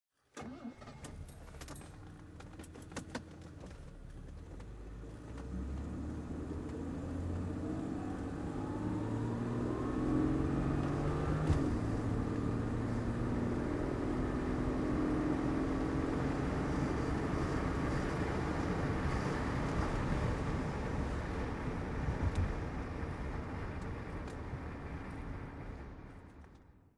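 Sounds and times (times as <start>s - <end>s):
Jaguar XJ6 coupe driving: 0.4s - 26.6s.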